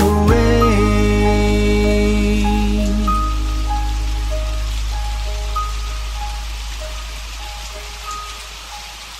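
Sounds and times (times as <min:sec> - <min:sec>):
soft sustained musical tones: 0:00.2 - 0:09.1
steady rain: 0:00.5 - 0:09.1.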